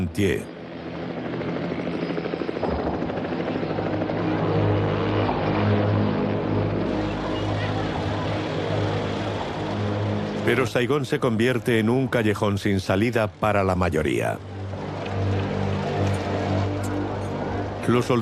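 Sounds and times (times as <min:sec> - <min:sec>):
speech: 0:00.0 - 0:00.5, 0:10.5 - 0:14.5, 0:17.9 - 0:18.1
helicopter engine drone: 0:00.0 - 0:18.1
helicopter rotor thudding overhead: 0:01.2 - 0:04.1.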